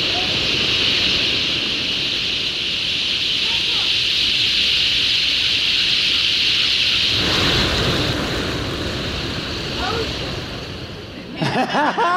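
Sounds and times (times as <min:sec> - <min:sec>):
ocean waves: 0:00.0 - 0:12.0
chirpy calls: 0:00.4 - 0:07.2
laughter: 0:11.2 - 0:12.1.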